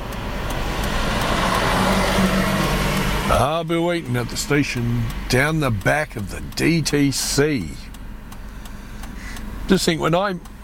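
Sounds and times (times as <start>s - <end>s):
bus engine rumbling at a red light: 0.0s - 10.6s
general road traffic noise: 0.0s - 10.6s
speech: 3.4s - 7.9s, 9.7s - 10.6s.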